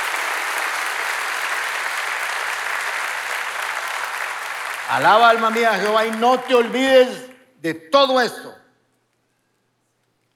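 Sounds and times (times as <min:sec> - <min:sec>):
audience applause from many hands: 0:00.0 - 0:07.2
speech: 0:04.9 - 0:08.6.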